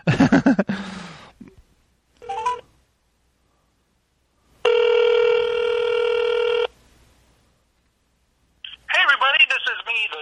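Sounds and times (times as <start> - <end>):
laughter: 0.0 - 0.8
telephone dialing tones: 4.6 - 6.7
recorded voice speaking: 8.6 - 10.2.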